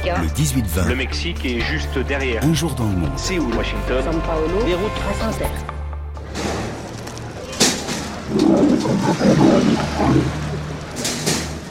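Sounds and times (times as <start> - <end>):
speech: 0.1 - 5.8, 8.3 - 10.4
lion roaring in deep rumbling growls: 7.4 - 11.0.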